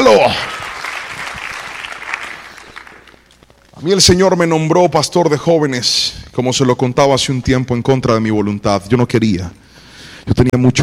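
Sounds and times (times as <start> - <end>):
congregation applauding loudly: 0.0 - 3.5
speech: 0.1 - 0.6, 3.8 - 9.6, 10.2 - 10.8.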